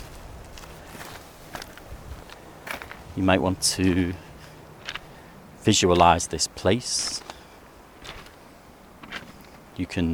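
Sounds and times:
footsteps crunching on the rocky shore of a reservoir: 0.0 - 5.3, 7.0 - 9.7
speech: 3.2 - 4.3, 5.6 - 7.3, 9.8 - 10.1.

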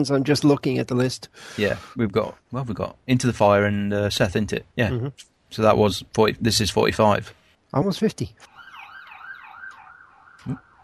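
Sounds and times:
speech: 0.0 - 8.5, 10.4 - 10.7
ambulance siren going past: 8.5 - 10.8.

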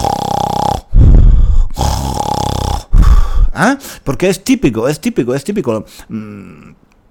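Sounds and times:
person snoring loudly: 0.0 - 3.6
speech: 3.6 - 6.8.

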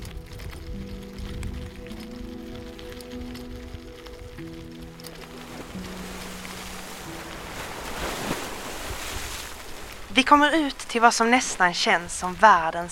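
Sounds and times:
low sustained humming tones: 0.0 - 12.4
surf washing and foaming against grey rocks on a headland shore: 4.4 - 12.9
speech: 10.2 - 12.9.

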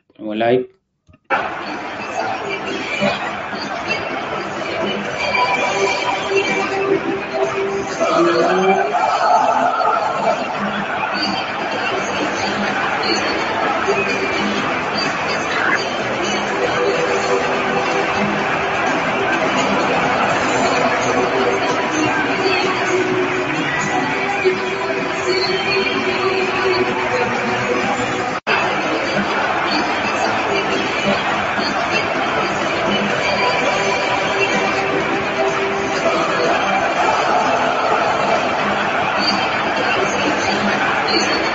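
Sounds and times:
speech: 0.2 - 1.8, 2.6 - 11.6
large stadium crowd roaring and chanting after a match: 1.3 - 41.5
laughter: 1.3 - 41.5.

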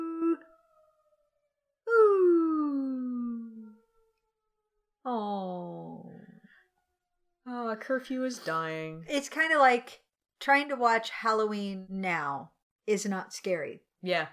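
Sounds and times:
person imitating a dog howling: 0.0 - 0.9, 1.9 - 3.8
speech: 7.8 - 14.3.

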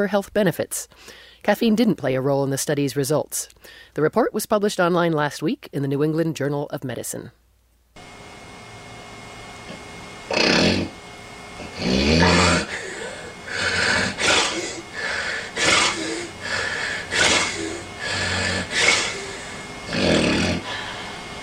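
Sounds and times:
speech: 0.0 - 7.4
loud snoring: 9.7 - 11.0, 11.6 - 21.4.

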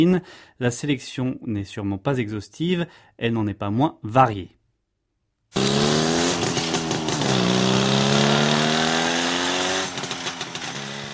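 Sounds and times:
speech: 0.0 - 4.6
Jawa motorcycle engine revving and idling: 5.5 - 11.1.

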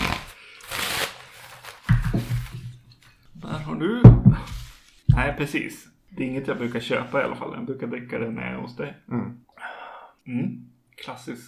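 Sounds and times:
paper rustling and shuffling on a table: 0.0 - 2.7
speech: 3.8 - 4.0, 5.2 - 9.4, 10.3 - 11.4.

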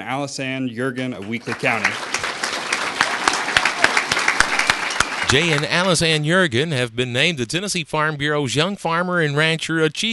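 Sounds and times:
speech: 0.0 - 2.2, 5.3 - 10.1
audience applause at a farm bureau summer conference after an award announcement: 1.2 - 6.2.

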